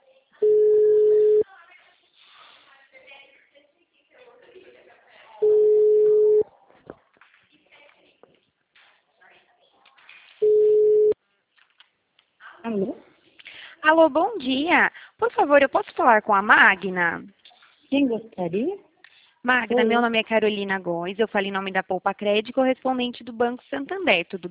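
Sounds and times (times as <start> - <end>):
ringback tone beeps of a recorded outgoing telephone call: 0.4 - 1.4, 5.4 - 6.4, 10.4 - 11.2
speech: 13.9 - 24.5.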